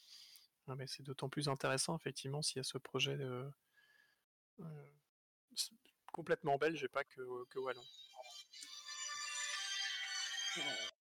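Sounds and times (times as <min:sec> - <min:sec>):
speech: 0:00.7 - 0:03.6, 0:04.6 - 0:08.7, 0:10.6 - 0:10.9
phone ringtone playing a bright electronic melody: 0:07.8 - 0:10.9.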